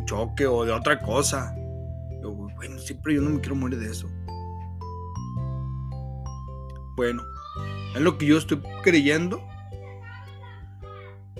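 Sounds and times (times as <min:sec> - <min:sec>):
speech: 0:00.1 - 0:01.6, 0:02.2 - 0:04.2, 0:07.0 - 0:09.5
young boy shouting at a girl: 0:07.4 - 0:09.3.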